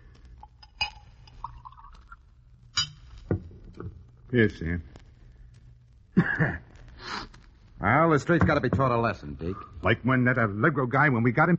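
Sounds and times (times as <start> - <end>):
drink poured into a glass: 0.4 - 2.2
clinks of glass on glass: 0.6 - 2.0, 2.8 - 3.2
speech: 4.3 - 4.9, 6.3 - 6.7, 7.8 - 11.5.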